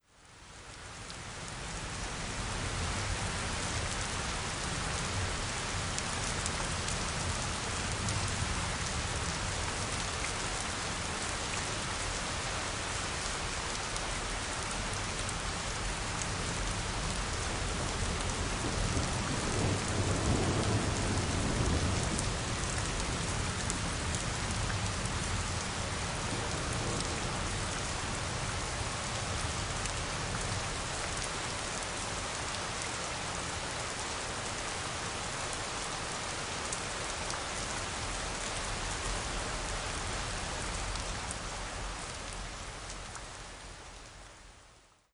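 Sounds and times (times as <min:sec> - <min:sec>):
rain: 0:00.0 - 0:45.1.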